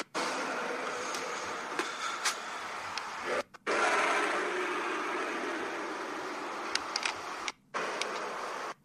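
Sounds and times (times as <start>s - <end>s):
fighter jets passing overhead: 0.2s - 8.7s.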